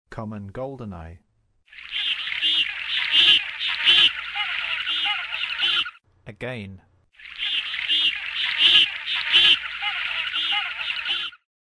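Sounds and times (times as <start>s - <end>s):
Common Goldeneye in North America: 1.8s - 6.0s, 7.2s - 11.4s.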